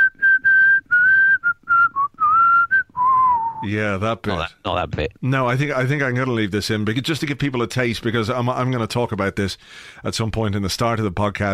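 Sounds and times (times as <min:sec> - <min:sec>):
person whistling a quick bouncy tune: 0:00.0 - 0:03.6
speech: 0:03.6 - 0:11.5.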